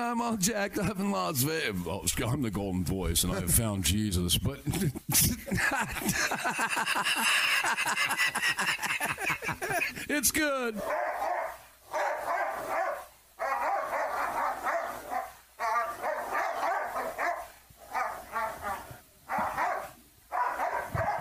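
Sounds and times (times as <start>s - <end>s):
speech: 0.0s - 11.2s
laughter: 4.5s - 10.3s
dog barking: 10.8s - 21.1s.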